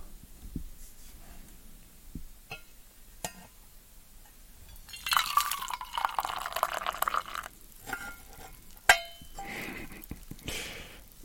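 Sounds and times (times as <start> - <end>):
light clinks of glass and ceramic: 4.7 - 9.4
hot coffee pouring from a siphon into a cup: 4.8 - 8.8.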